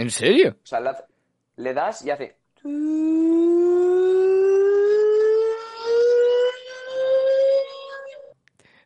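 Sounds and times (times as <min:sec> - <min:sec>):
speech: 0:00.0 - 0:03.4
buzzy electronic tone from a mobile phone app played through phone speaker to eject water: 0:03.0 - 0:08.2.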